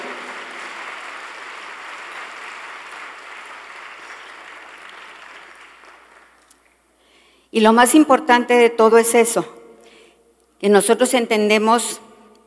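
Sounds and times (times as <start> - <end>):
audience applauding: 0.0 - 6.6
speech: 7.5 - 9.6, 10.6 - 12.1.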